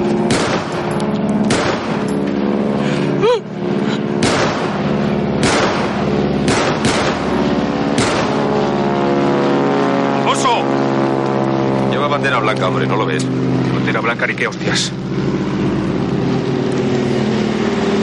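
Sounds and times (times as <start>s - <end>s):
steady droning hum: 0.0s - 18.0s
pistol shots fired at an airplane: 0.3s - 2.1s, 4.2s - 4.8s, 5.4s - 7.3s, 8.0s - 8.4s
speech: 12.4s - 13.3s, 14.2s - 15.4s.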